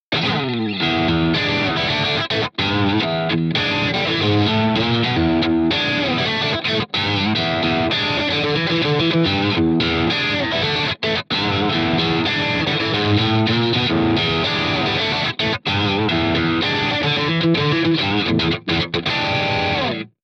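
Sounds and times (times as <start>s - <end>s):
vintage overdriven electric guitar on bridge pickup: 0.1s - 20.2s.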